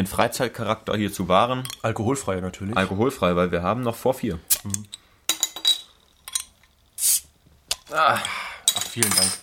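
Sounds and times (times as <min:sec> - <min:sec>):
speech: 0:00.0 - 0:05.0, 0:07.9 - 0:08.4, 0:09.0 - 0:09.4
glass bottles of non-alcoholic beer clinking together: 0:04.7 - 0:06.7, 0:07.7 - 0:09.4.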